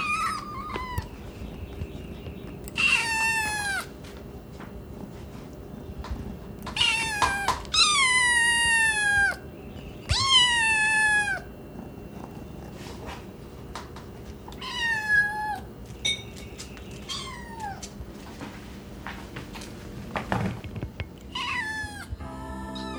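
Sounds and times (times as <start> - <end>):
several hungry kittens meowing: 0.0 - 1.8, 2.4 - 4.0, 6.6 - 12.7, 14.5 - 15.7, 16.9 - 18.0, 21.2 - 22.2.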